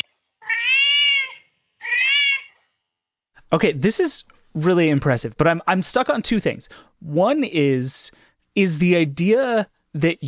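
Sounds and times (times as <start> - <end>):
cat meowing: 0.4 - 2.6
speech: 3.5 - 10.2.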